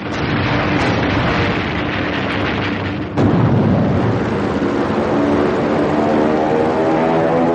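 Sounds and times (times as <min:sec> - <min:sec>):
heavy bomb blast on the battleship Arizona: 0:00.0 - 0:06.2
Japanese bomber aircraft engine drone: 0:01.8 - 0:07.5.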